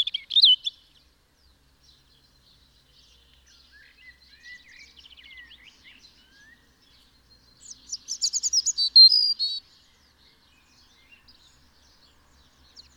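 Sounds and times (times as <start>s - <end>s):
European robin Erithacus rubecula singing: 0.0s - 12.9s.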